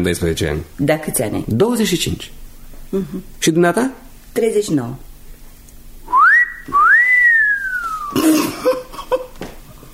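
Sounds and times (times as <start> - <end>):
speech: 0.0 - 5.1
man giving an admiring whistle: 6.1 - 8.2
cough: 8.1 - 9.0.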